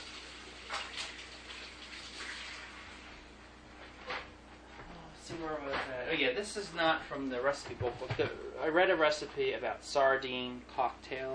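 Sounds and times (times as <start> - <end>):
running tap water as hands are washed: 0.0 - 3.1
speech: 5.4 - 11.3.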